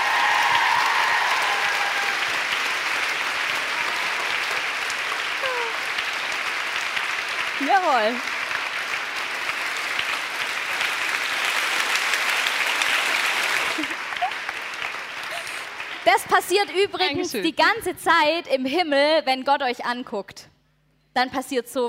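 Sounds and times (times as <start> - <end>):
large crowd applause: 0.0 - 17.2
person shouting: 5.4 - 5.8
speech: 7.7 - 8.3, 16.1 - 20.5, 21.2 - 21.8.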